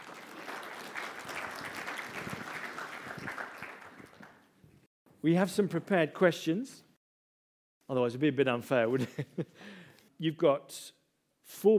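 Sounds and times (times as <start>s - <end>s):
audience applauding: 0.0s - 4.5s
speech: 5.2s - 6.8s, 7.9s - 11.7s.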